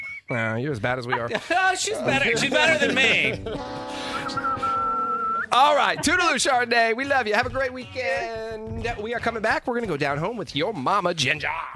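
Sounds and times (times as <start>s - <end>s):
person whistling a thin high note: 0.0s - 0.4s, 3.9s - 5.6s
speech: 0.3s - 4.7s, 5.5s - 11.7s
laughter: 1.1s - 6.4s.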